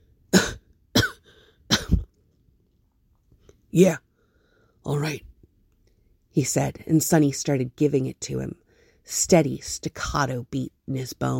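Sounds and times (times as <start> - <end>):
man coughing to clear his throat: 0.3 - 2.1
speech: 3.7 - 4.1, 4.8 - 5.3, 6.4 - 11.3.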